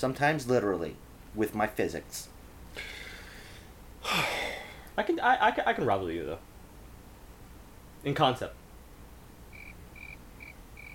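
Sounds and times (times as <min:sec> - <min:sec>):
speech: 0:00.0 - 0:03.0, 0:04.0 - 0:04.4, 0:05.0 - 0:06.5, 0:08.0 - 0:08.6
low hiss: 0:00.0 - 0:10.9
cricket chirping: 0:09.5 - 0:10.9.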